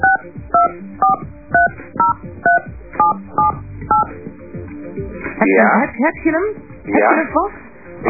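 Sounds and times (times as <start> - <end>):
touch-tone dial beeps dialing a telephone number: 0.0 - 4.1
speech: 5.4 - 8.0.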